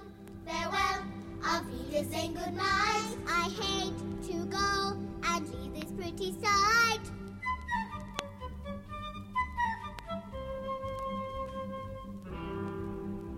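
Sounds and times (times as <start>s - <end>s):
children's voices singing a farewell song: 0.0s - 7.1s
light instrumental accompaniment: 0.0s - 13.3s.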